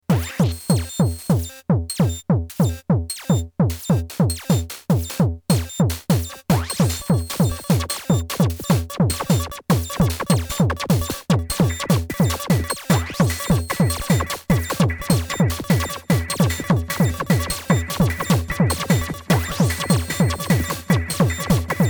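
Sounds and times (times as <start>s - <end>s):
six-voice drums with delay effect: 0.1s - 21.8s.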